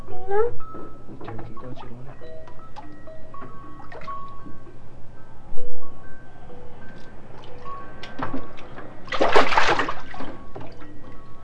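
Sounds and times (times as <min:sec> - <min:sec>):
speech: 0:00.3 - 0:03.6
bath water sloshing and dripping in a bathtub as a small child bathes with a cup: 0:03.9 - 0:04.3, 0:09.1 - 0:10.8
small splashes of bath water: 0:09.1 - 0:10.4.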